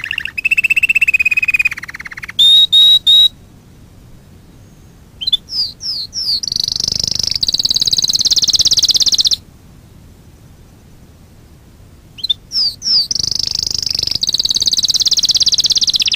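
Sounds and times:
Fife canary singing: 0.0s - 3.4s, 4.4s - 9.4s, 12.1s - 16.1s.

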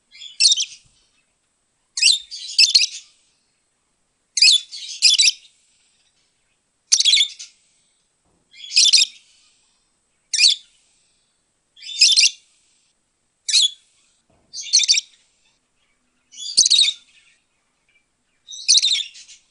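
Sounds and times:
lovebird calling: 0.1s - 1.3s, 2.0s - 3.2s, 4.4s - 5.6s, 6.9s - 7.6s, 8.5s - 9.6s, 10.3s - 10.8s, 11.8s - 12.4s, 13.5s - 19.4s.

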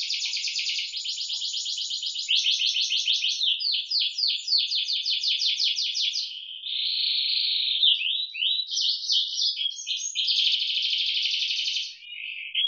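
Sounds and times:
canary singing isian moza song with trills and warbled notes: 0.0s - 12.6s.

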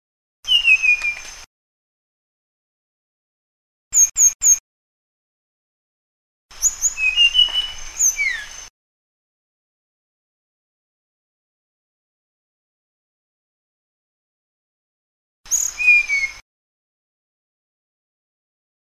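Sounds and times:
Sunda blue flycatcher song of thin high whistled notes: 0.5s - 1.4s, 4.0s - 4.6s, 6.6s - 8.7s, 15.5s - 16.4s.

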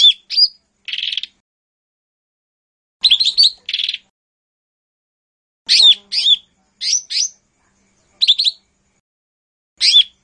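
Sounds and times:
lesser green leafbird song: 0.0s - 1.4s, 3.0s - 4.1s, 5.7s - 9.0s, 9.8s - 10.2s.

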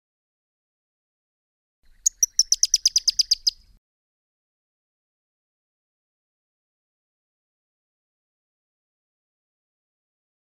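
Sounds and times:
Pyrrhuloxia giving a rapid chattering series of crisp high chip notes: 2.1s - 3.6s.

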